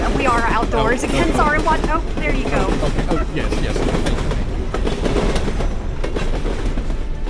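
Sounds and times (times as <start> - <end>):
train rolling past outdoors: 0.0 - 7.2
train wheels clickety-clacking over rail joints: 0.0 - 7.2
speech: 0.8 - 4.1.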